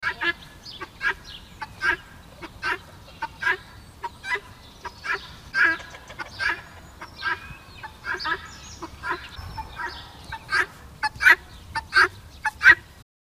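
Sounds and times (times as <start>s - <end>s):
guineafowl calling: 0.0s - 13.0s.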